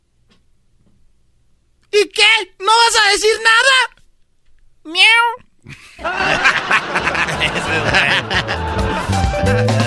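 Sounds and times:
speech: 0:03.1 - 0:03.9
person imitating cat meows: 0:04.9 - 0:05.4
loud laughter: 0:05.7 - 0:09.8.

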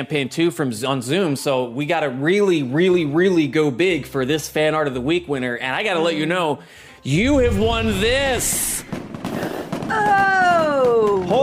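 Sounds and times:
speech: 0:00.0 - 0:11.4
fireworks crackling and popping bursts: 0:07.1 - 0:11.4.

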